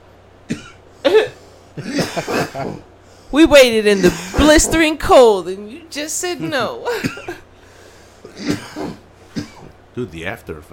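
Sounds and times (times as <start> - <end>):
man coughing harshly: 0.4 - 2.9, 3.9 - 4.7, 6.9 - 7.5, 8.2 - 9.8
speech: 1.8 - 7.4, 10.0 - 10.7.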